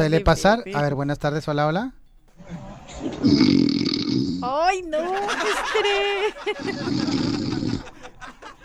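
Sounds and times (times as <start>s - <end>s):
laughter: 0.0s - 1.2s, 2.3s - 3.8s, 4.4s - 8.6s
speech: 0.0s - 7.1s
loud raspy snore with throaty drone: 2.4s - 4.7s, 6.3s - 8.6s.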